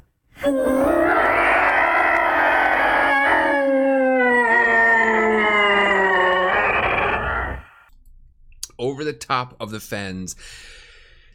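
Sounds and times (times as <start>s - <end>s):
speech: 0.4s - 1.0s, 9.3s - 10.8s
eerie howling screams echoing over fens in dense fog: 0.4s - 7.9s.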